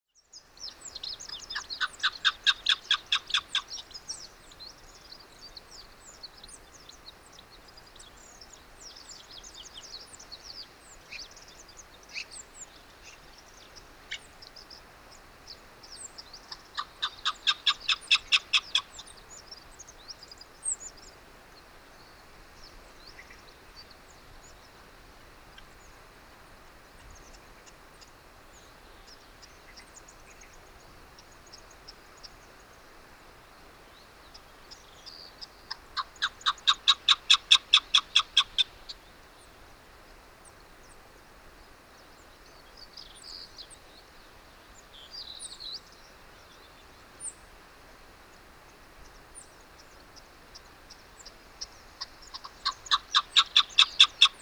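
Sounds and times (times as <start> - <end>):
chukar partridge calling: 0.6 - 14.9, 15.5 - 21.1, 33.9 - 39.1, 49.1 - 54.4.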